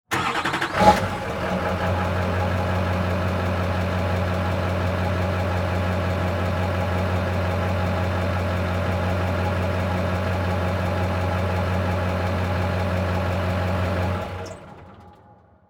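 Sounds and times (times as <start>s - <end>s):
diesel truck starting, idling and switching off, recorded from the rear: 0.0s - 15.6s.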